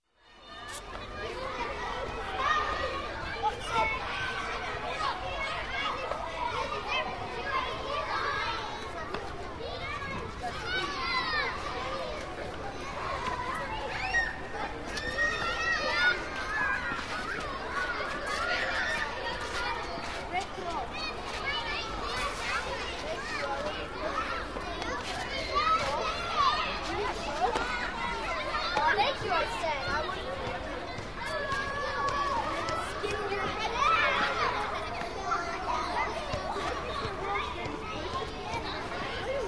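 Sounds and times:
children playing in a schoolyard: 0:00.0 - 0:39.4.

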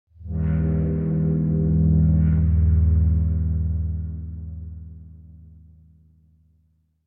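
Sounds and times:
higher bass horn reminder duet: 0:00.2 - 0:05.4.

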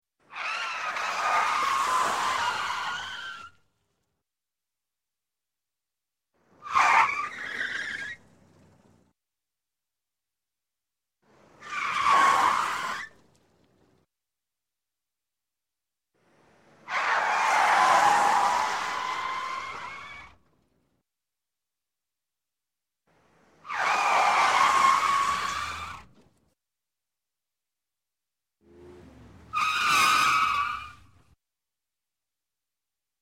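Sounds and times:
car tires skidding under braking: 0:00.3 - 0:03.6, 0:06.4 - 0:08.8, 0:11.3 - 0:13.8, 0:16.2 - 0:20.4, 0:23.2 - 0:26.3, 0:28.6 - 0:31.4.

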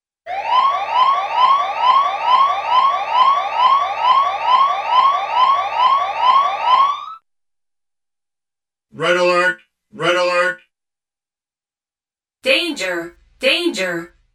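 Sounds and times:
cartoon siren blasts: 0:00.3 - 0:07.2
cartoon computerized voice: 0:08.9 - 0:10.7, 0:12.5 - 0:14.2.

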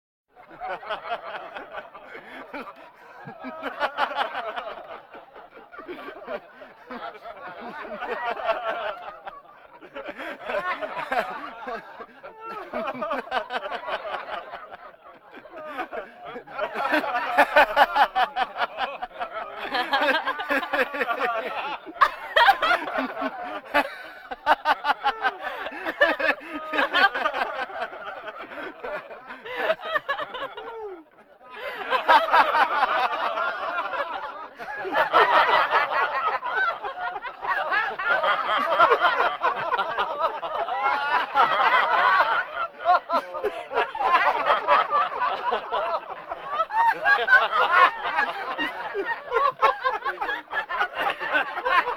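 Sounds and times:
laughter: 0:00.4 - 0:51.9
breathing vocal effects: 0:02.2 - 0:02.4, 0:31.6 - 0:31.8.

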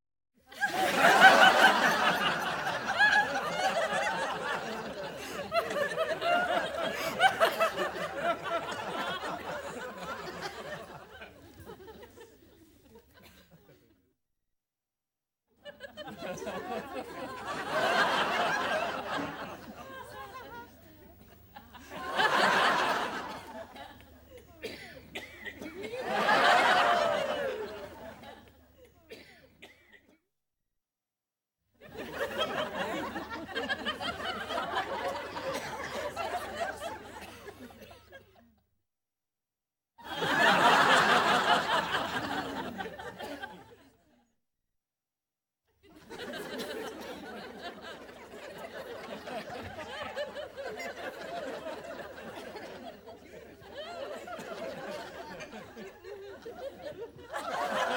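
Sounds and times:
studio audience laughing: 0:00.5 - 0:13.9, 0:15.6 - 0:28.5, 0:31.8 - 0:38.4, 0:40.0 - 0:44.0, 0:45.8 - 0:57.9.

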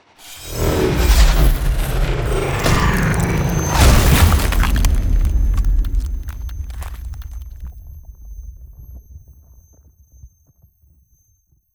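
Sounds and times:
ice spell area damage impact: 0:00.3 - 0:07.8.

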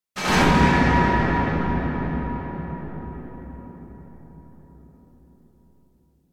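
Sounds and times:
strong reverberant distant metal drop impact: 0:00.2 - 0:06.3.

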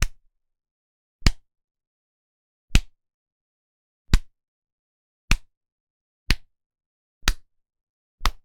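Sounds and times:
human slaps: 0:00.0 - 0:00.2, 0:01.2 - 0:01.5, 0:02.7 - 0:03.0, 0:04.1 - 0:04.4, 0:05.3 - 0:05.5, 0:06.3 - 0:06.5, 0:07.2 - 0:07.5, 0:08.2 - 0:08.4.

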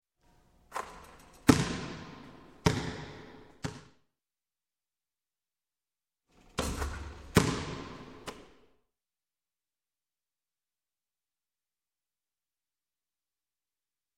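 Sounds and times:
basketball sinking into basket: 0:00.8 - 0:03.9, 0:06.6 - 0:08.6.

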